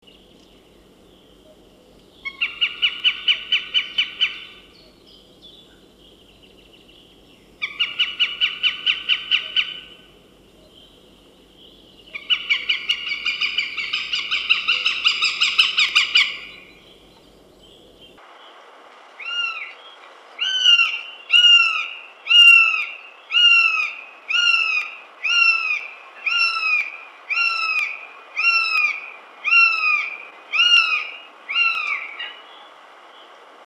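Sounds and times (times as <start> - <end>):
northern goshawk Accipiter gentilis calling: 1.2 - 5.0, 7.6 - 10.8, 11.7 - 17.9, 19.2 - 19.8, 20.4 - 32.4.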